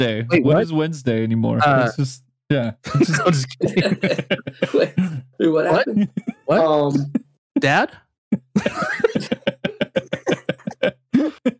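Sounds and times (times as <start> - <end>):
speech: 0.0 - 9.6
laughter: 1.6 - 7.8, 8.4 - 11.5
harsh coughing fit: 2.9 - 7.2, 8.4 - 11.5.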